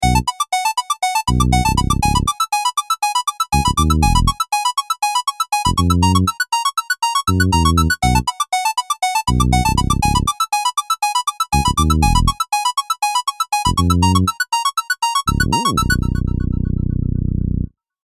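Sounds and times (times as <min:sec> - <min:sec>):
Minimoog synthesizer arpeggio: 0:00.0 - 0:17.7
Taurus synth bass: 0:01.3 - 0:02.3, 0:03.6 - 0:04.3, 0:05.7 - 0:06.3, 0:07.3 - 0:08.2, 0:09.3 - 0:10.3, 0:11.6 - 0:12.3, 0:13.7 - 0:14.3, 0:15.3 - 0:17.7.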